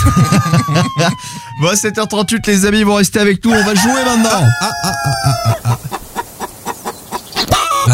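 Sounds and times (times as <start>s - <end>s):
laughter: 0.0s - 1.5s, 3.6s - 6.2s
speech: 0.1s - 6.0s
hen clucking: 3.5s - 7.9s.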